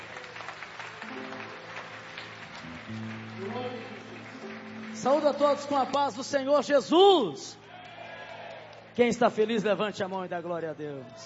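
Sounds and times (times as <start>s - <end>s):
crowd applauding in a room: 0.0s - 7.0s, 7.7s - 9.4s
speech: 2.9s - 3.6s, 5.0s - 7.6s, 9.0s - 11.2s.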